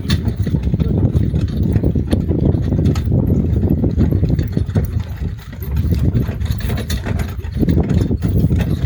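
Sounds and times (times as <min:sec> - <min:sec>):
horses trotting while pulling a carriage in Windsor: 0:00.0 - 0:08.8
rumble of carriage wheels: 0:00.0 - 0:08.8.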